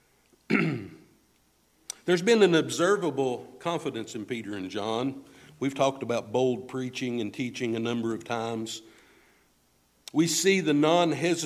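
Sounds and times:
single short throaty cough: 0.5 - 1.2
speech: 2.1 - 8.9, 10.1 - 11.4.

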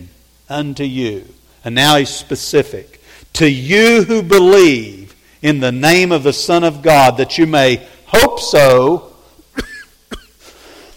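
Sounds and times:
speech: 0.5 - 9.1
breathy hiss: 2.9 - 3.4, 5.1 - 5.6, 7.8 - 8.2, 9.1 - 10.9
person coughing: 9.5 - 10.6.

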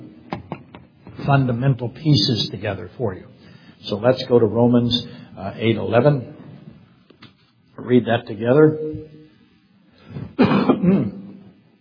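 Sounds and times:
speech: 1.3 - 6.4, 7.9 - 9.2
man coughing and clearing throat in a rough gravelly burst: 10.1 - 11.5.

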